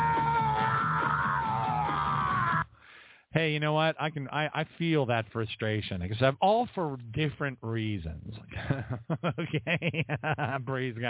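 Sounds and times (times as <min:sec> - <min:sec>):
man screaming in a played recording: 0:00.0 - 0:02.7
speech: 0:03.4 - 0:11.0
laughter: 0:08.5 - 0:11.0.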